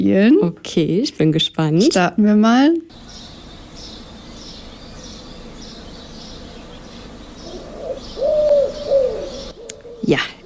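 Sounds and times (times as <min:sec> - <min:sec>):
speech: 0:00.0 - 0:03.2, 0:10.1 - 0:10.4
common wood pigeon cooing: 0:07.4 - 0:10.4.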